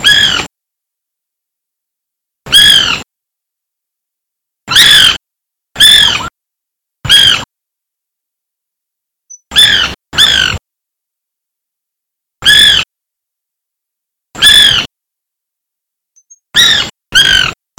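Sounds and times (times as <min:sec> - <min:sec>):
Melanerpes candidus white woodpecker calling: 0:00.0 - 0:00.5, 0:02.5 - 0:03.0, 0:04.7 - 0:05.2, 0:05.8 - 0:06.3, 0:07.1 - 0:07.4, 0:09.3 - 0:10.6, 0:12.4 - 0:12.9, 0:14.4 - 0:14.9, 0:16.2 - 0:17.7.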